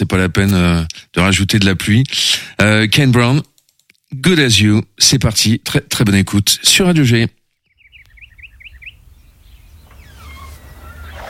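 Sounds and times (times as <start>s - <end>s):
speech: 0.1s - 3.5s, 4.1s - 7.4s
small birds chirping in a song: 7.4s - 11.2s.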